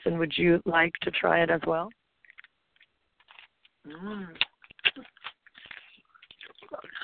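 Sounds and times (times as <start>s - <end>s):
speech: 0.0s - 2.0s, 3.9s - 5.1s
chewing arugula leaves: 3.3s - 7.0s.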